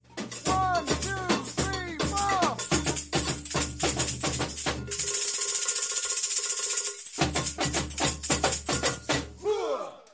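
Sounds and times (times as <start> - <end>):
baiao rhythm end break: 0.0 - 5.1, 7.2 - 9.4.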